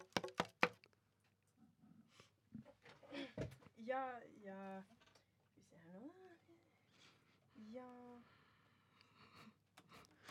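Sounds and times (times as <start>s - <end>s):
quick sharp knocks on a door: 0.0s - 0.8s
speech: 3.9s - 5.0s, 7.6s - 8.4s.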